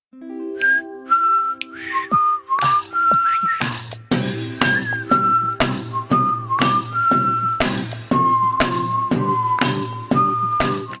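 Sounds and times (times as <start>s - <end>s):
solo flute: 0.6s - 3.6s, 4.6s - 10.9s.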